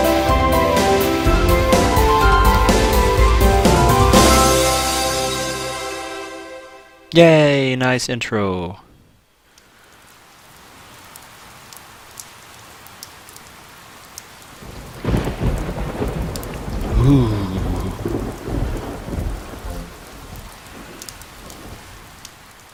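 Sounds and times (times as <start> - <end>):
deep rolling rumble of thunder: 0.0 - 5.8, 14.6 - 22.7
steady rain downpour: 0.0 - 6.3, 9.0 - 22.7
speech: 7.2 - 8.8, 17.1 - 17.4.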